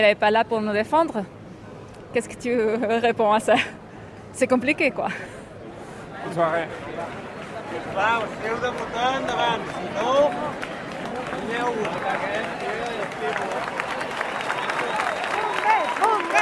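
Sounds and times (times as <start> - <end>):
speech: 0.0 - 1.4, 2.1 - 5.4, 6.2 - 10.7, 11.3 - 13.8
large crowd clapping and cheering for arriving firefighters: 6.7 - 16.4.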